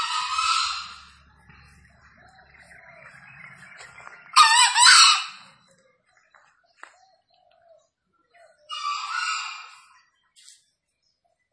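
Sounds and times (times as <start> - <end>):
wild green junglefowl crowing from up in a tree: 0.0 - 1.2, 2.5 - 5.6, 8.7 - 10.0
faint low rumbling: 0.1 - 4.4.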